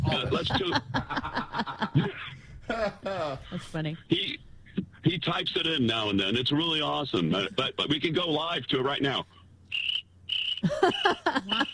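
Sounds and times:
laughter: 0:00.0 - 0:03.7, 0:10.6 - 0:11.7
speech: 0:00.1 - 0:01.4, 0:02.8 - 0:04.4, 0:05.2 - 0:09.4, 0:10.8 - 0:11.7
crickets chirring: 0:09.7 - 0:11.7
low warbling calls: 0:09.7 - 0:11.7.

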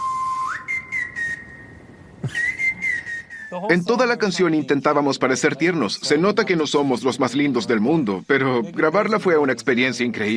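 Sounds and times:
person whistling a short bright melody: 0:00.0 - 0:03.7
speech: 0:03.5 - 0:10.3.

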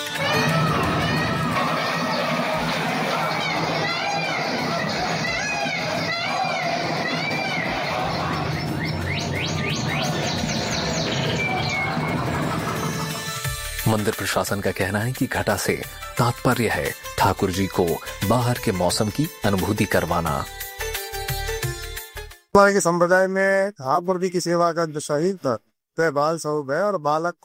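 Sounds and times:
murmur of indistinct crowd voices in a temple: 0:00.2 - 0:13.1
many birds chirping and tweeting: 0:00.2 - 0:13.5
speech: 0:13.9 - 0:20.6, 0:22.5 - 0:27.4.

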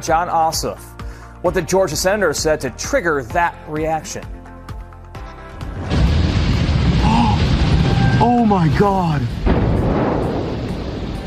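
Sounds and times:
speech: 0:00.0 - 0:04.4, 0:08.2 - 0:09.5
gas tank exploding in flames with a crashing boom: 0:05.6 - 0:11.2
sustained loud low rumbling roar: 0:05.8 - 0:11.2.

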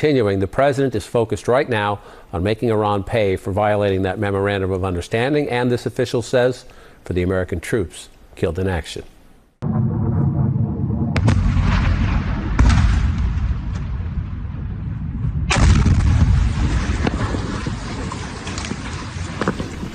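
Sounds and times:
speech: 0:00.0 - 0:09.9
missile strike explosions at an airbase: 0:09.6 - 0:19.6.

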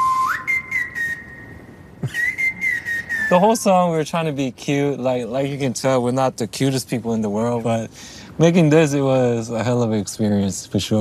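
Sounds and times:
person whistling a short melody: 0:00.0 - 0:03.4
speech: 0:03.3 - 0:10.9.

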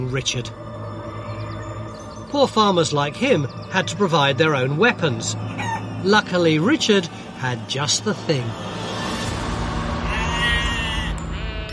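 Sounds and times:
speech: 0:00.0 - 0:00.6, 0:02.3 - 0:09.0
sheep bleating: 0:10.1 - 0:11.7.

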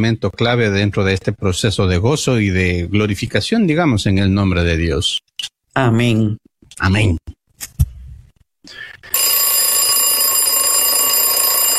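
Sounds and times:
speech: 0:00.0 - 0:07.8
alarm clock ringing with electronic tone: 0:09.1 - 0:11.7.

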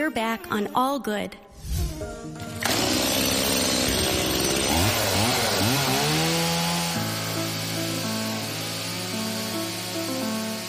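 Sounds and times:
speech: 0:00.1 - 0:01.5
chainsaw carving a block of ice: 0:02.4 - 0:10.6.

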